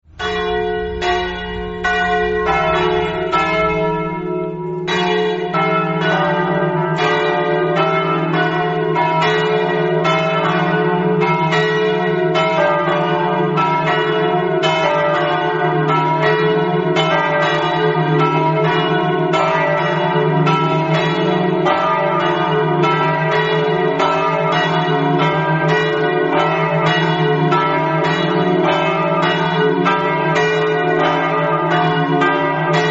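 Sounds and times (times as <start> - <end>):
bells ringing: 0.0 - 32.8.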